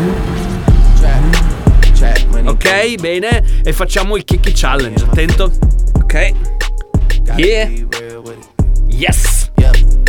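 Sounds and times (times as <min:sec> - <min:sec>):
car engine starting and idling: 0:00.0 - 0:05.3
speech: 0:02.8 - 0:06.6, 0:07.2 - 0:08.4, 0:09.0 - 0:09.9.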